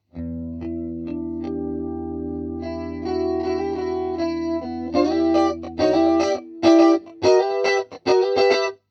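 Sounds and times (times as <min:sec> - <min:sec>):
medium chorus effect: 0:00.0 - 0:08.9.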